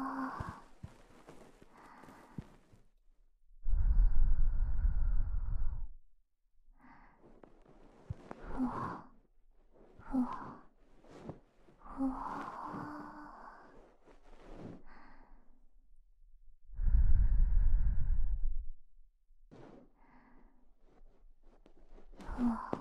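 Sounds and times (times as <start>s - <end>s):
quiet breathy sounds: 0.0s - 3.0s, 3.6s - 6.0s, 6.7s - 15.7s, 16.7s - 18.8s, 19.5s - 22.8s
fluffy bonten ear-cleaning brush rustling softly: 0.3s - 2.8s, 7.2s - 8.8s, 9.7s - 14.8s.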